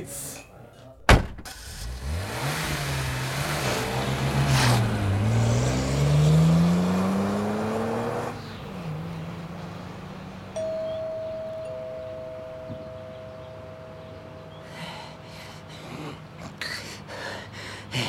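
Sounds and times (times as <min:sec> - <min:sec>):
speech: 0:00.0 - 0:00.3
car door shutting: 0:01.1 - 0:01.8
car engine starting and revving as the car pulls away: 0:01.5 - 0:10.6.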